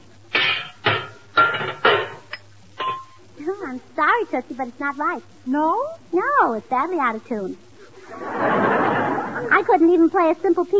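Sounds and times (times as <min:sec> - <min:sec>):
hammer banging on a metal motor during tuning: 0:00.3 - 0:03.2
speech: 0:03.7 - 0:08.5, 0:09.4 - 0:10.7
laughter: 0:08.0 - 0:09.7.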